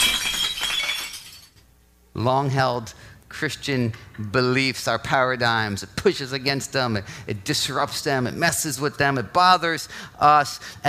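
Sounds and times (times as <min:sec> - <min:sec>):
breaking glass shattering: 0:00.0 - 0:01.6
speech: 0:02.2 - 0:10.8.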